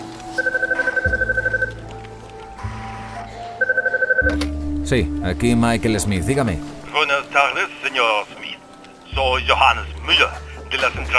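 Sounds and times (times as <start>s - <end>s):
electronic telephone ringing in UK company offices: 0.4s - 1.7s, 2.9s - 4.5s
speech: 4.9s - 8.4s, 9.2s - 11.1s.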